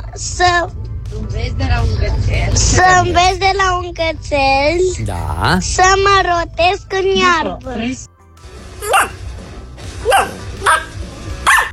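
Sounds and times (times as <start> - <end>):
low hum: 0.0 - 8.1
speech: 0.2 - 8.1
dog barking: 8.8 - 9.3, 10.0 - 11.7.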